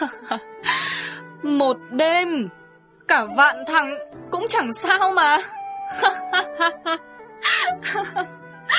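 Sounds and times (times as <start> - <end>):
woman laughing breathily: 0.0 - 0.5, 5.9 - 8.7
speech: 0.0 - 0.6, 1.4 - 8.7
woman sobbing and moaning: 0.0 - 1.2, 5.9 - 8.7.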